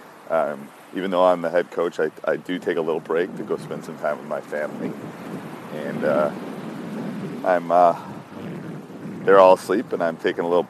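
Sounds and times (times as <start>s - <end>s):
low wind rumble buffeting the microphone on a beach: 0.0s - 10.6s
speech: 0.3s - 6.5s, 7.4s - 8.1s, 9.2s - 10.6s.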